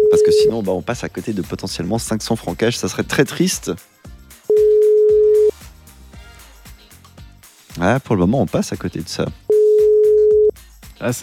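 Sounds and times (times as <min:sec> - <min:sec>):
telephone ringback tone: 0:00.0 - 0:00.5, 0:04.5 - 0:05.5, 0:09.5 - 0:10.5
music: 0:00.0 - 0:11.2
speech: 0:00.1 - 0:03.9, 0:07.8 - 0:09.4, 0:11.0 - 0:11.2.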